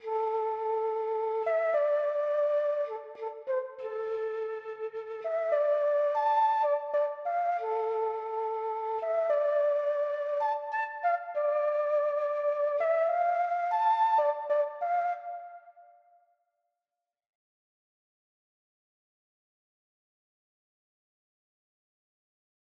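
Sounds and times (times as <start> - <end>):
flute in D minor: 0.0 - 16.3.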